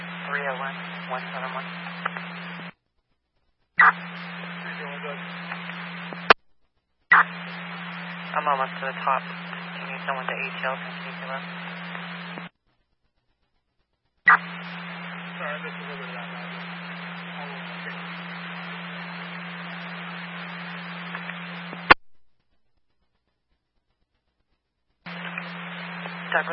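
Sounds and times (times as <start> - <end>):
garbled radio transmission: 0.0 - 2.7, 3.8 - 6.4, 7.1 - 12.5, 14.3 - 22.0, 25.1 - 26.5
steady underlying hum: 0.0 - 6.4, 7.0 - 26.5
speech: 0.3 - 2.3, 8.4 - 11.7.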